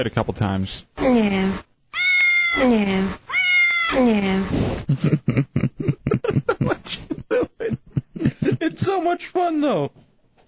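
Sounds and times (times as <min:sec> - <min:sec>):
speech: 0:00.0 - 0:01.7, 0:02.5 - 0:03.3, 0:03.9 - 0:10.0
cat meowing: 0:01.9 - 0:04.1
laughter: 0:04.9 - 0:08.9.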